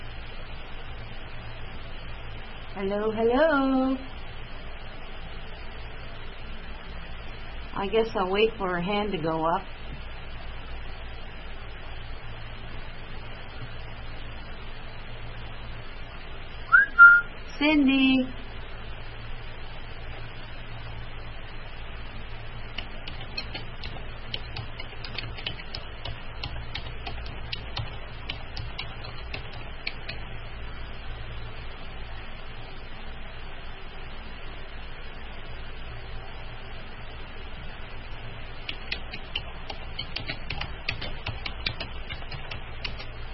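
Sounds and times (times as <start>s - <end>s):
speech: 2.8s - 4.1s, 7.8s - 9.8s, 17.6s - 18.4s
rapid typing on a keyboard: 22.8s - 30.2s, 38.7s - 43.1s.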